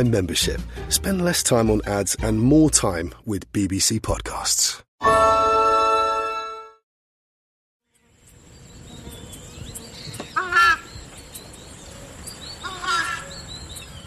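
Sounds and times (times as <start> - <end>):
speech: 0.0 - 5.3
birds: 7.9 - 14.0
insects outdoors: 7.9 - 14.0
screamer bird harsh honking calls: 10.1 - 11.0, 12.6 - 13.5.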